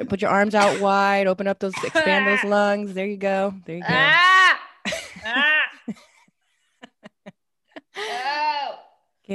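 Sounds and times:
speech: 0.0 - 4.4, 5.2 - 6.1
person coughing raspily from ash in the throat: 0.6 - 0.9, 1.7 - 2.4.

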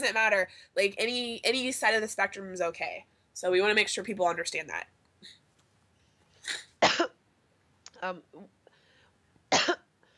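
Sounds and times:
speech: 0.0 - 5.4, 8.0 - 8.6
person coughing: 6.5 - 7.2.

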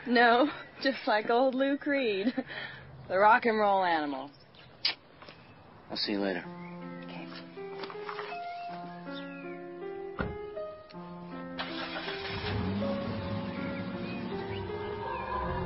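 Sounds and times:
speech: 0.0 - 5.0, 5.9 - 6.7
music: 6.4 - 15.6
car engine starting and running while driven onto a campus: 11.6 - 15.6.

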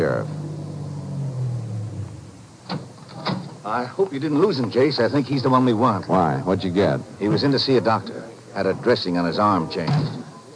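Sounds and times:
car engine humming as car pulls away from the curb: 0.0 - 8.0
speech: 3.6 - 10.5.

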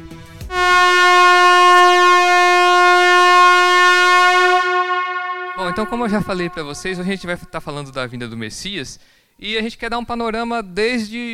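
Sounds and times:
loud steady horn blast: 0.5 - 7.5
speech: 5.8 - 11.3.

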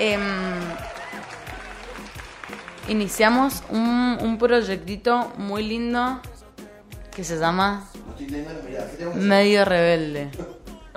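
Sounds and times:
speech: 0.0 - 0.4, 2.9 - 6.3, 7.2 - 10.9
scattered applause: 0.0 - 3.7.

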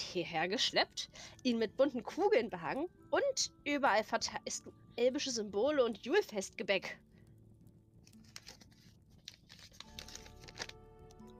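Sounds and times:
speech: 0.1 - 7.1
piece of paper crinkling and rustling: 8.0 - 11.3.

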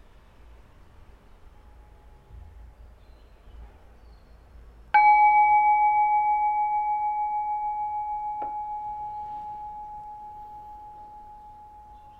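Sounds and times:
resonant bell ringing in a quiet room: 5.0 - 12.1.

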